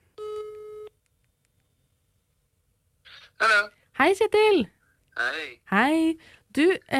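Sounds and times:
electronic telephone ringback tone while a call connects: 0:00.2 - 0:00.9
speech: 0:03.4 - 0:06.9.

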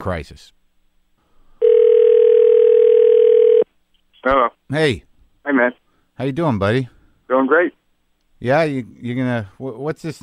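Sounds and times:
speech: 0:00.0 - 0:00.6, 0:04.2 - 0:07.8, 0:08.4 - 0:10.2
telephone ringing tone: 0:01.6 - 0:03.7.

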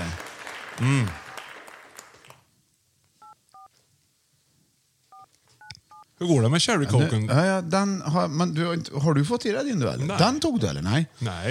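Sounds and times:
speech: 0:00.8 - 0:01.2, 0:06.2 - 0:11.4
DTMF touch-tone beeps of a phone number being dialed: 0:03.2 - 0:03.7.

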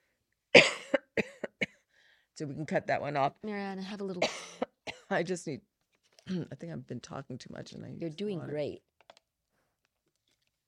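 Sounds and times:
person coughing harshly: 0:00.6 - 0:01.8, 0:04.2 - 0:05.1
speech: 0:02.4 - 0:05.7, 0:06.3 - 0:08.9.

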